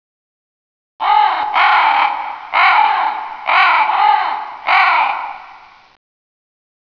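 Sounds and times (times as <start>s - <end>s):
crow cawing: 1.0s - 5.8s.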